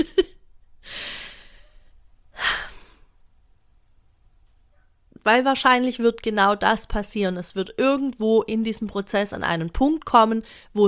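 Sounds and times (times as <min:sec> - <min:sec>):
deep breath in and out: 0:00.8 - 0:03.1
speech: 0:05.2 - 0:10.8.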